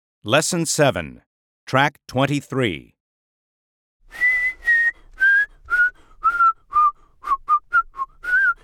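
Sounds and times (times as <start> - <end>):
speech: 0.2 - 3.0
person whistling a simple tune: 4.1 - 8.6.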